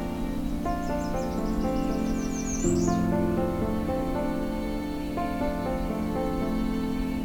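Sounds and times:
American Redstarts, Nashville Warblers and Yellow-Rumped Warblers singing along forest trails: 0.0 - 7.2
steady droning tonal background: 0.0 - 7.2.

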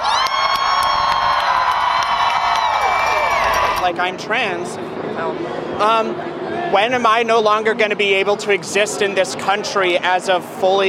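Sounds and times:
scattered clapping: 0.0 - 3.9
large crowd screaming and cheering: 0.0 - 4.0
speech: 3.8 - 10.8.

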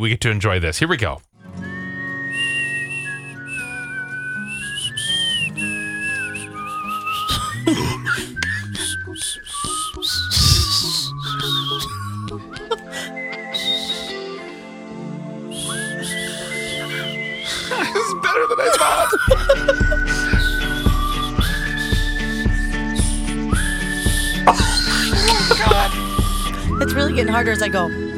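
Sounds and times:
speech: 0.0 - 1.4, 18.4 - 19.4, 26.9 - 28.0
person whistling a melody: 1.6 - 14.7, 15.5 - 28.1
laughter: 6.8 - 13.7, 16.3 - 21.1, 24.4 - 26.7
instrumental backing with a steady beat: 19.2 - 26.8.

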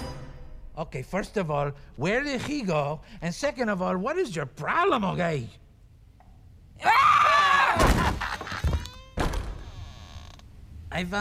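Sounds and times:
speech: 0.8 - 5.6, 10.9 - 11.1
goat screaming: 6.8 - 7.8.

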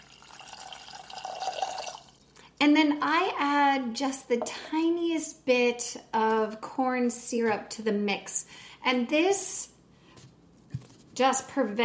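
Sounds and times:
cup of water pouring into a pot of granulated sugar for simple syrup: 0.0 - 2.3
speech: 2.6 - 9.7, 11.2 - 11.8.

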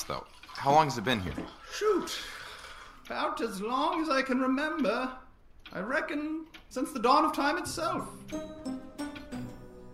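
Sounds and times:
speech: 0.1 - 2.4, 3.1 - 8.8
grandfather clock ticking: 2.7 - 9.9.

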